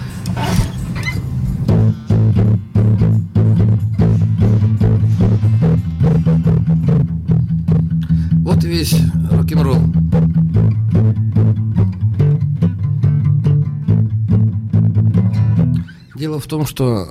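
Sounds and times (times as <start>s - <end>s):
distorted electric guitar playing a low blues shuffle riff: 0.0s - 16.2s
speech: 8.8s - 10.0s, 16.2s - 17.1s.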